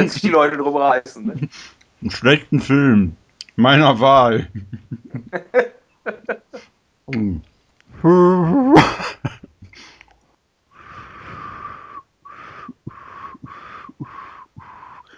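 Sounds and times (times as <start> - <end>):
speech: 0.0 - 6.3, 7.1 - 9.5
laughter: 1.1 - 2.5, 4.1 - 6.6, 8.1 - 9.6
brief voiced rising hum: 4.0 - 5.3, 6.5 - 8.8, 10.8 - 15.1
breathy attempt at whistling a tune: 10.8 - 15.1.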